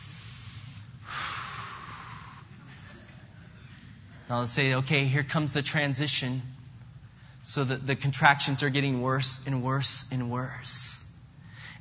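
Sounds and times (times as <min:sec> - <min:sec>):
deep cleansing breath exhale of Lamaze breathing: 0:00.0 - 0:02.6
steady low hum: 0:00.0 - 0:11.7
speech: 0:04.3 - 0:06.6, 0:07.5 - 0:11.0.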